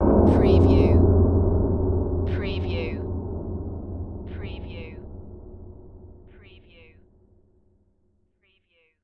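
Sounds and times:
metal hit: 0:00.0 - 0:06.4.

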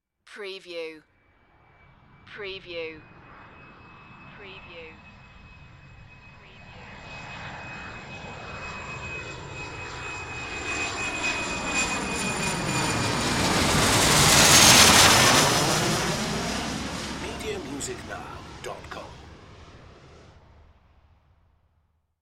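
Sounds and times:
private jet passing by: 0:05.6 - 0:20.3.

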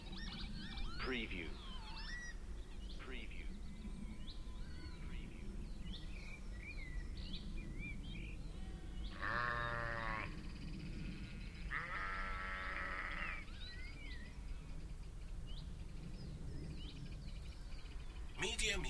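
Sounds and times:
spring birds twittering and whistling at Beacon Fell, Preston: 0:00.0 - 0:18.8
speech: 0:01.0 - 0:01.7
sheep bleating at Beacon Fell, Preston: 0:11.7 - 0:13.4.

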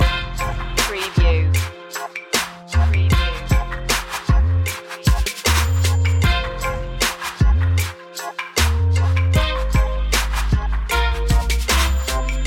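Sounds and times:
funky trap music loop: 0:00.0 - 0:12.4.

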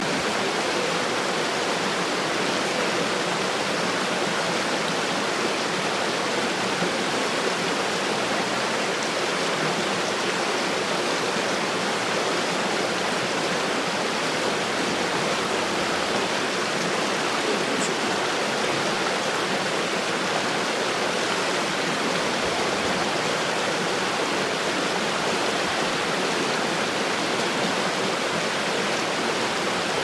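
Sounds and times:
large river flowing: 0:00.0 - 0:30.0.

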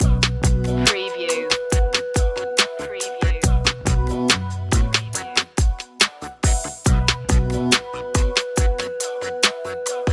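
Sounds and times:
deep hip hop loop: 0:00.0 - 0:10.1.

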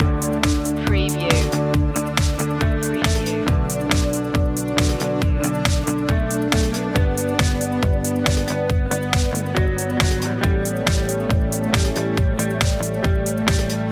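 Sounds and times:
music loop: 0:00.0 - 0:13.8.

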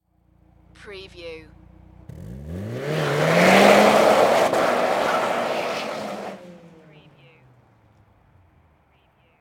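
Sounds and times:
Nissan Silvia exhaust accelerating on takeoff: 0:01.5 - 0:09.0.

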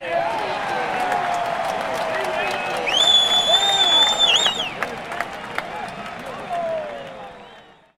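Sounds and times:
baseball crowd cheering in a sports arena: 0:00.0 - 0:07.9
whistling in a sports arena: 0:02.4 - 0:04.8, 0:07.0 - 0:07.9.

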